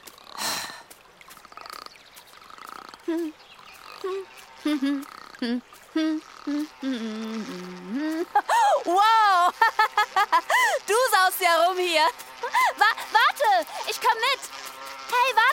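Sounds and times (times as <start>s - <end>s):
voice imitating a frog with throaty croaks: 0.1s - 8.9s
speech: 3.1s - 3.4s, 4.0s - 9.8s, 10.7s - 15.5s.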